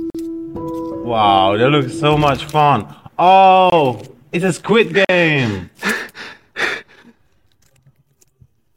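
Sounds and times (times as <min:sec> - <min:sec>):
speech: 0:01.0 - 0:06.0
heavy breaths recreated as a foley sound effect: 0:05.4 - 0:07.4.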